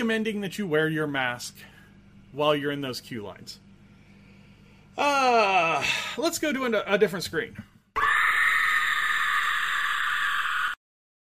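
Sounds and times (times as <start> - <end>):
speech: 0.0 - 1.7, 2.3 - 3.6, 5.0 - 7.7
small creature shrill yell: 8.0 - 10.8.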